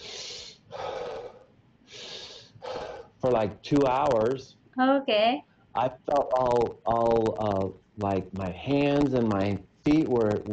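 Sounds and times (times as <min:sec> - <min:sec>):
voice imitating rapid heavy hyperventilating breaths during hypnosis attempt: 0:00.0 - 0:03.4
speech: 0:03.2 - 0:10.5.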